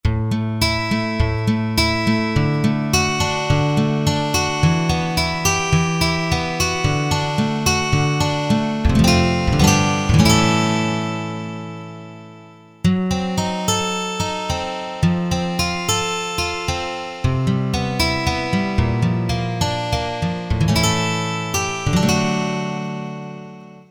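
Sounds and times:
guitar jamming: 0.1 - 23.8.

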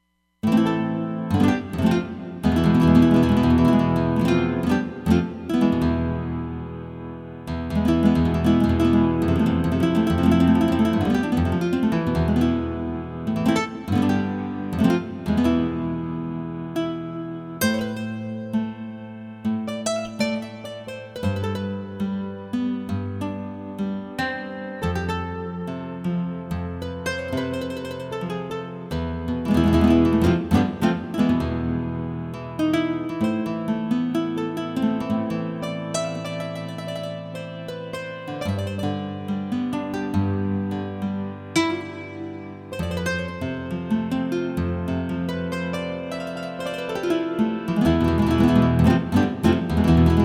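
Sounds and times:
flamenco guitar on Roland Fantom XR: 0.4 - 50.2.

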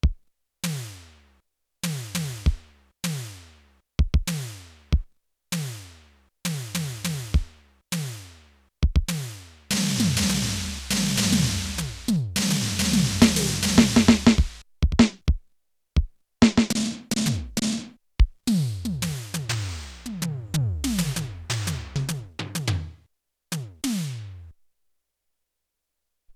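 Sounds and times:
Simmons electronic drums: 1.8 - 15.4, 16.4 - 24.5.

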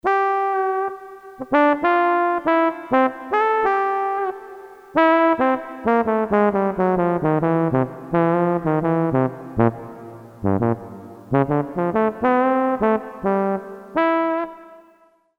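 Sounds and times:
synthesized trombone brass sound: 0.0 - 15.2.

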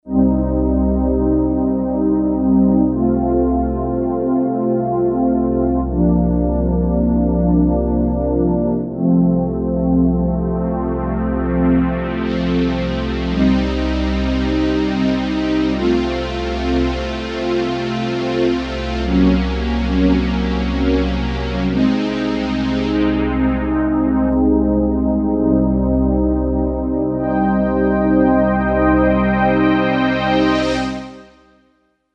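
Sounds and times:
Kawai K5000S synthesizer factory preset sound: 0.1 - 31.4.

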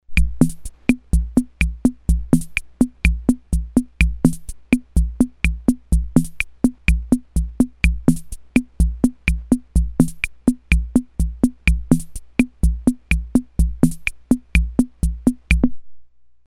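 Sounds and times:
Ace Tone Rhythm Ace FR-2L drum machine beguine rhythm: 0.0 - 15.8.

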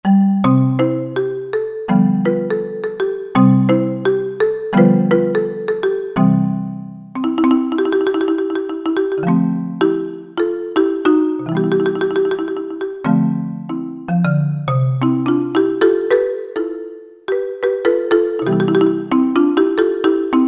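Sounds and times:
synthesized marimba from a synthesizer factory preset: 0.0 - 20.4.

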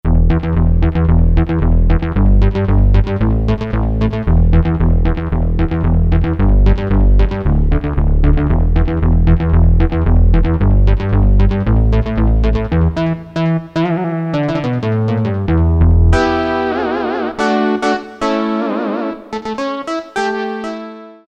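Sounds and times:
Korg DSS-1 synthesizer: 0.1 - 21.2.

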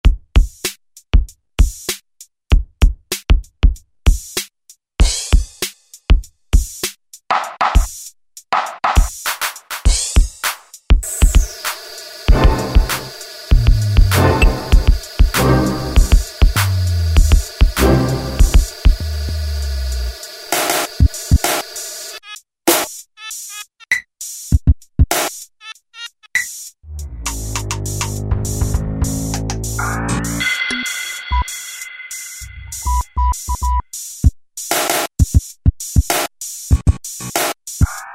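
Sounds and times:
drum set: 0.0 - 25.5, 26.4 - 38.1.

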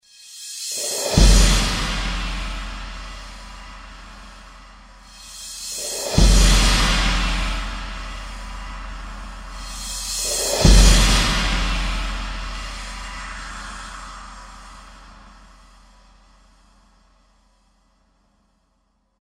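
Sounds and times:
orchestral horror hit on C4 from a synthesizer module: 0.9 - 16.2.

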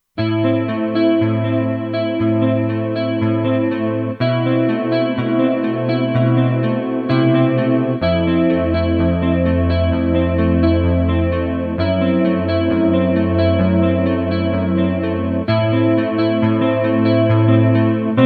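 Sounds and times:
slow chorus guitar on a Kurzweil K2500X: 0.2 - 18.2.

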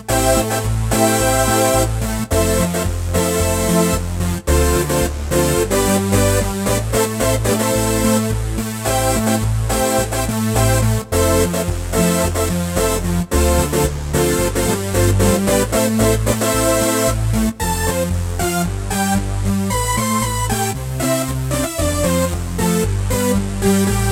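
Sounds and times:
Roland SC-880 Dance Saw synth patch: 0.1 - 24.1.

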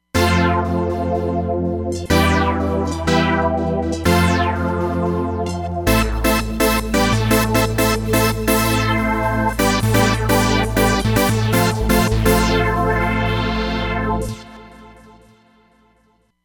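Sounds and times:
Roland Fantom XR synthesizer trance sweep: 0.2 - 15.6.

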